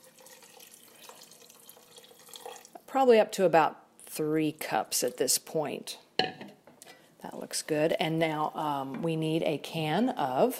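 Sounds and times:
water pouring into a pot of chili: 0.0s - 2.8s
speech: 2.9s - 6.3s, 7.5s - 10.5s.

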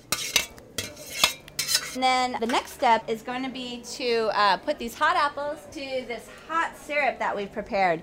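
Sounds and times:
utensil clinking and scraping on pot while draining blanched apple slices: 0.0s - 2.8s
speech: 2.0s - 8.0s.

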